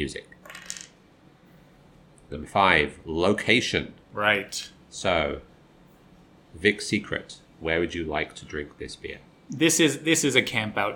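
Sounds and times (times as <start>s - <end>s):
speech: 0.0s - 0.3s, 2.3s - 5.5s, 6.5s - 10.9s
dice clattering across a hard surface: 0.4s - 1.0s.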